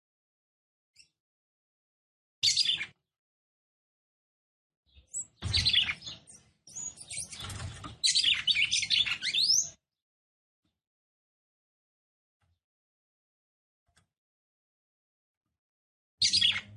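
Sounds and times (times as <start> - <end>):
female Red-cowled cardinal singing fast scratchy high twittering notes: 4.9 - 9.8, 16.2 - 16.7.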